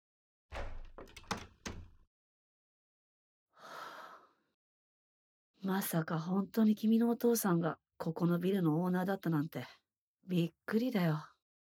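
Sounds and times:
key unlocking a café front door: 0.5 - 2.0
speech: 5.6 - 11.3.

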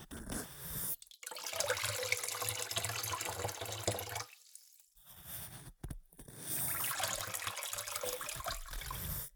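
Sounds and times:
warm water pouring to rinse foam from hair: 0.9 - 5.0, 6.6 - 9.2.

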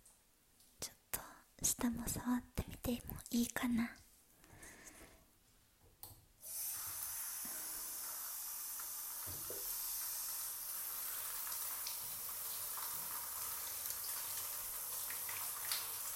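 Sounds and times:
speech: 2.0 - 4.0
shower water running: 6.4 - 16.1.

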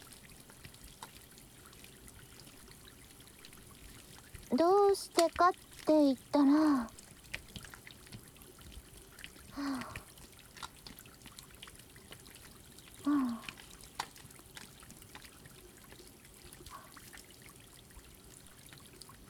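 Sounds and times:
water trickling from a tap: 0.0 - 19.2
faint wet rubbing and squeaks of washing a tap handle with soap: 4.5 - 7.0
speech: 4.5 - 7.0.

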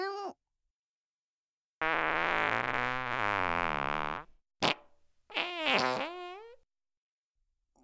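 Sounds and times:
loud buzzing sputtering farts: 1.8 - 6.6.

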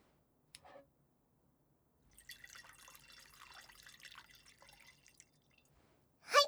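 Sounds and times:
sake pouring into a cup: 2.2 - 5.7.

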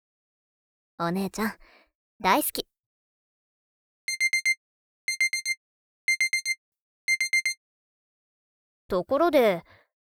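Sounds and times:
speech: 1.0 - 2.7, 8.9 - 9.8
electronic alarm clock beeping: 4.1 - 7.6.

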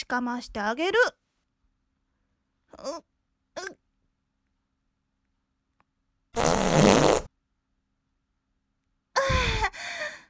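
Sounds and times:
speech: 0.1 - 1.2, 2.8 - 3.8
farts: 6.4 - 7.3.

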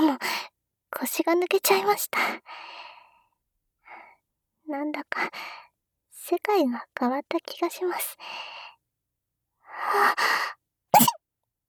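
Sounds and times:
speech: 0.9 - 2.8, 4.7 - 5.6, 6.2 - 8.6, 9.8 - 10.6
person sneezing: 11.0 - 11.2.

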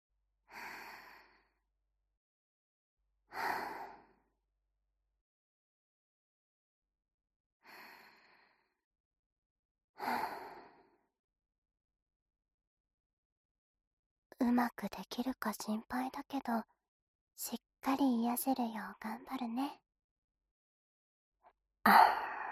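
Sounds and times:
slow deep breaths taken while trying to relax: 0.5 - 1.6, 3.3 - 4.3, 7.6 - 8.8, 10.0 - 11.0
speech: 14.4 - 16.8, 17.4 - 19.8, 21.8 - 22.3.

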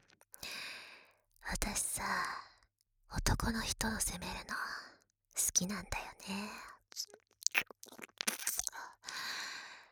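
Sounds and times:
speech: 1.6 - 2.5, 3.1 - 4.8, 5.4 - 7.3
wet ear-licking mouth sounds: 6.9 - 8.8.

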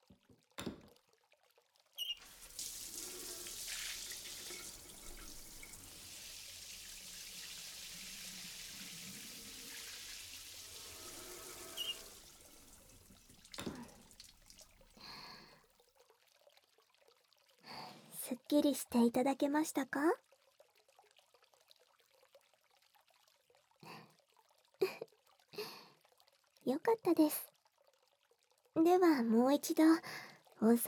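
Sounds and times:
water running from a tap at a hot spring to rinse someone off: 2.0 - 15.5
speech: 18.5 - 20.2, 26.9 - 27.5, 29.0 - 30.8.

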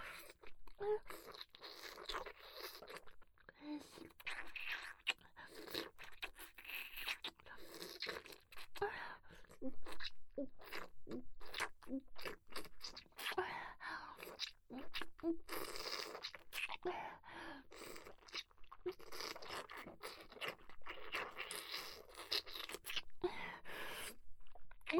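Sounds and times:
wet slurping mouth sounds: 0.0 - 13.5, 14.1 - 17.1, 17.7 - 24.9
speech: 0.8 - 1.5.

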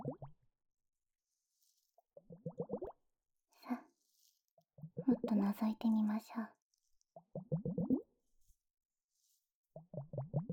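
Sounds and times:
water gurgling and bubbling with plops: 0.0 - 0.4, 2.2 - 3.0, 7.2 - 8.2, 9.8 - 10.5
speech: 5.3 - 6.6.

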